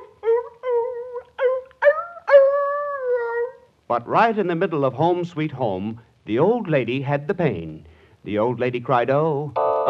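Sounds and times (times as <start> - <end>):
dog long drawn-out howl: 0.0 - 3.6
speech: 3.9 - 9.8.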